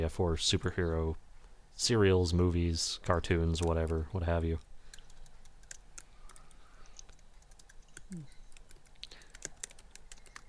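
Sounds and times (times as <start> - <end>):
speech: 0.0 - 4.7, 8.1 - 8.3
low hum: 0.0 - 10.4
furious typing on a computer keyboard: 3.5 - 10.4.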